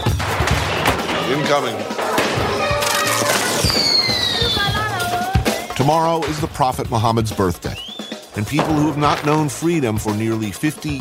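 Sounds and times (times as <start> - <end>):
fireworks set off by kids crackling and banging outdoors in a medina: 0.0 - 5.5, 8.2 - 10.2
speech: 1.3 - 2.5, 5.8 - 10.9
high whistling firework rocket: 3.5 - 4.8.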